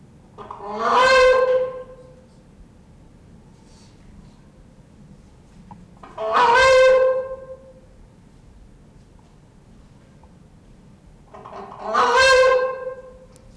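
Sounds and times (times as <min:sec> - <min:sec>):
adult Balearica regulorum calling: 0:00.4 - 0:02.1, 0:06.0 - 0:07.8, 0:11.4 - 0:13.3.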